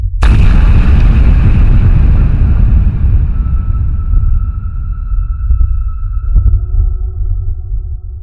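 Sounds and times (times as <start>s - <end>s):
heavy explosion lifting the upper slab of a nuclear reactor: 0.2s - 8.2s.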